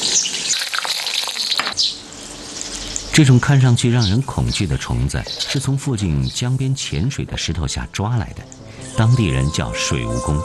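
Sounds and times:
bamboo worms deep-frying in hot oil in a pot: 0.0 - 4.4
speech: 3.2 - 10.4.

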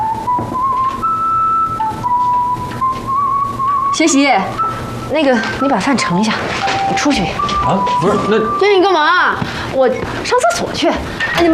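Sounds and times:
person whistling a tune on a street on a cold day: 0.0 - 6.0, 6.6 - 8.8
steady hum of noise: 0.0 - 11.5
speech: 4.0 - 11.5.

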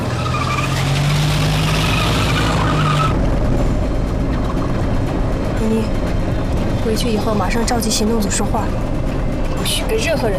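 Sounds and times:
car tires skidding and squealing: 0.0 - 3.3
car engine roaring as it speeds off: 0.0 - 10.3
speech: 6.9 - 9.0, 9.7 - 10.3.

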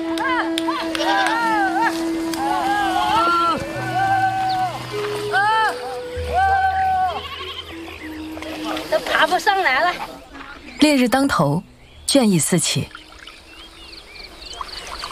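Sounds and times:
low tonal drone: 0.0 - 14.4
flock of sheep bleating while herded across a hillside: 0.9 - 8.2
speech: 10.8 - 13.0.

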